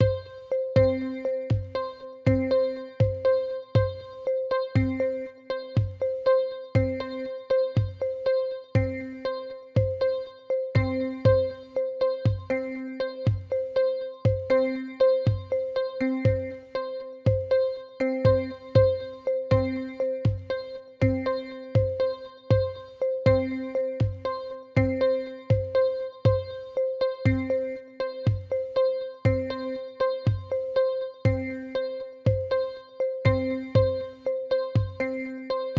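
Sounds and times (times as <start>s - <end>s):
bouncing percussion: 0.0s - 35.7s.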